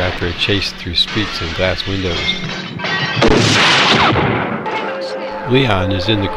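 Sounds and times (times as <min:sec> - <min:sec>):
speech: 0:00.2 - 0:04.3, 0:05.5 - 0:06.3
heavy pistol gunshot in a film chase scene: 0:02.6 - 0:04.8.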